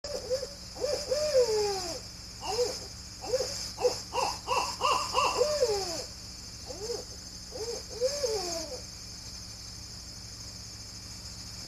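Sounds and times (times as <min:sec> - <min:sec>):
owl hooting loudly in a yard: 0:00.1 - 0:08.9.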